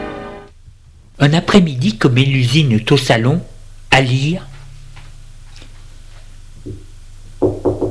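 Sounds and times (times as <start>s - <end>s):
speech: 1.2s - 4.5s
knocking on a door: 6.6s - 7.8s.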